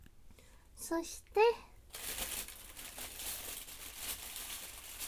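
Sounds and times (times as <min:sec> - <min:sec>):
speech: 0:00.8 - 0:01.7
plastic bag holding vegetables crinkling and rustling: 0:01.9 - 0:05.0.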